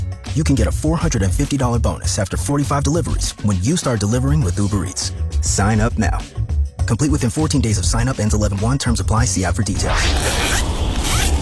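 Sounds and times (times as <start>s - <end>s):
speech: 0.4s - 10.7s
zipper of a child's new warm winter coat being zipped up: 9.8s - 11.4s.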